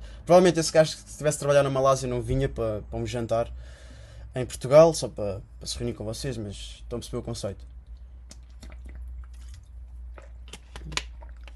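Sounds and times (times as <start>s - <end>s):
steady low hum: 0.0s - 11.5s
speech: 0.3s - 3.8s, 4.4s - 7.7s
mouth clicks: 7.6s - 11.5s
person drinking water: 7.7s - 11.5s.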